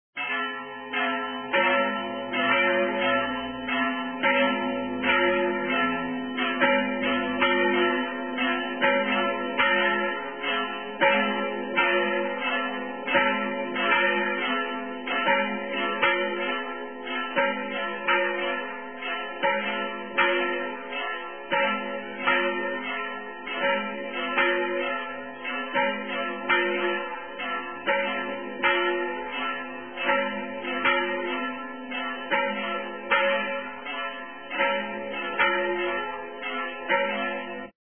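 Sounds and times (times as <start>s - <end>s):
bells ringing: 0.2s - 37.7s.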